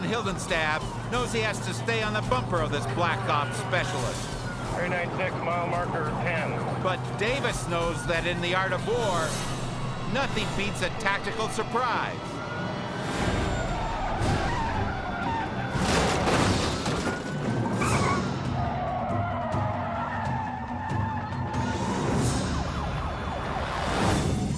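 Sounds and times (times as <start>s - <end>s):
loud car engine and road noise: 0.0s - 24.5s
tires screeching in a hard braking skid: 0.0s - 24.5s
wailing police siren: 0.0s - 24.5s
speech: 0.1s - 12.4s
police cruiser crunching into a car's rear: 13.0s - 18.9s.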